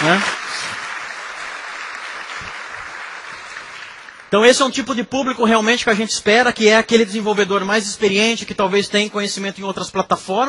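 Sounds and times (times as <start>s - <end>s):
speech: 0.0s - 0.4s, 4.3s - 10.4s
audience applause for a presenter: 0.0s - 4.4s.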